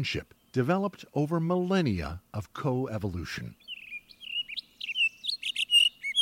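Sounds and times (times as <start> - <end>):
speech: 0.0 - 3.6
recorded song of a fruit-eating seed-spreading songbird: 0.0 - 6.2.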